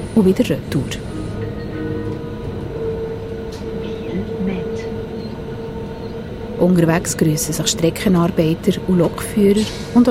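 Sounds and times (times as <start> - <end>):
train arriving at a station with rumbling wheels and carriages: 0.0 - 10.0
speech: 0.2 - 1.0, 6.6 - 10.0
faint squealing tones of arriving train: 2.7 - 6.8.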